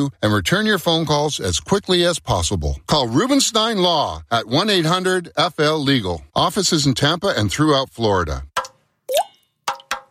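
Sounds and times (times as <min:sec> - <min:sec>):
speech: 0:00.0 - 0:08.5
water dripping from leaking pipes: 0:08.6 - 0:10.1.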